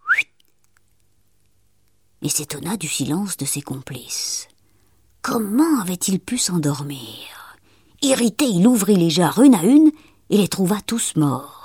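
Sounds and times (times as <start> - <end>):
short rising human whistle signal: 0.0 - 0.4
faint low hum: 0.1 - 11.6
speech: 2.2 - 4.5, 5.3 - 7.4, 8.0 - 11.6.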